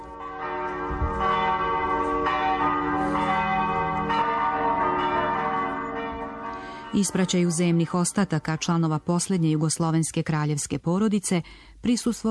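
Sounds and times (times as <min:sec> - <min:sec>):
church bells ringing: 0:00.0 - 0:09.3
speech: 0:06.9 - 0:12.2.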